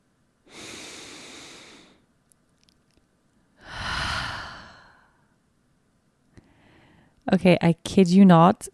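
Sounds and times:
deep breaths: 0:00.5 - 0:02.1, 0:03.6 - 0:05.4, 0:06.4 - 0:07.2
speech: 0:07.3 - 0:08.7.

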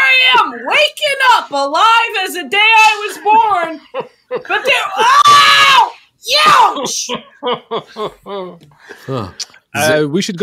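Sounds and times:
people hollering and yelping: 0:00.0 - 0:03.8, 0:04.5 - 0:07.1
speech: 0:01.5 - 0:02.8, 0:06.8 - 0:10.4
laughter: 0:02.8 - 0:05.2, 0:06.6 - 0:09.3
people screaming: 0:04.8 - 0:06.9.

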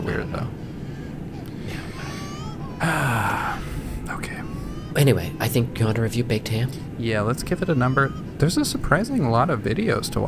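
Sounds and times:
baby crying on an airplane: 0:00.0 - 0:05.5, 0:07.6 - 0:08.5
speech: 0:05.0 - 0:10.2.

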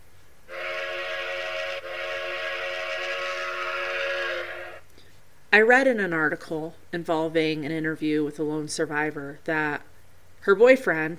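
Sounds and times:
train horn blast on a trestle: 0:00.5 - 0:04.8
speech: 0:05.5 - 0:11.1.

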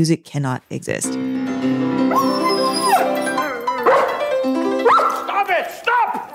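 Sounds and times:
speech: 0:00.0 - 0:02.4
pack of dogs barking and yowling: 0:02.1 - 0:05.3.

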